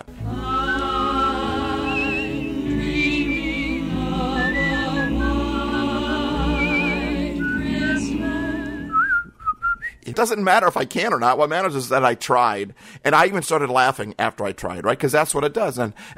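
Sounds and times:
full instrumental accompaniment: 0.0s - 9.0s
person whistling a wavering vibrato-laden tune: 0.4s - 10.0s
speech: 10.2s - 16.1s.

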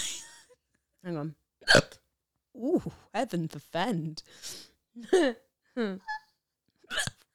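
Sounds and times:
speech: 1.0s - 1.8s, 2.6s - 6.2s
person giving sharp voiced hiccups: 1.6s - 2.0s, 6.9s - 7.2s.

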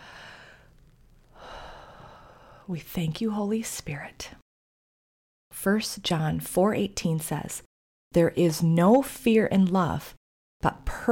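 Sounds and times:
deep breath with a soft airy inhale and longer exhale: 0.0s - 2.7s
speech: 2.7s - 4.4s, 5.6s - 11.1s.

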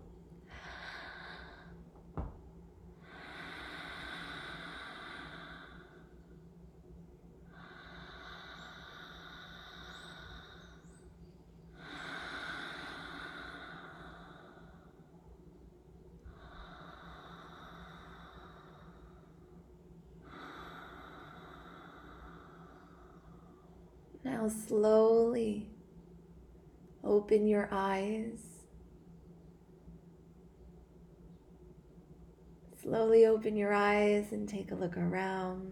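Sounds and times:
slow breathing in and out during a breathwork exercise: 0.4s - 2.0s, 3.0s - 24.1s
speech: 24.3s - 25.7s, 27.1s - 28.4s, 33.2s - 35.7s.

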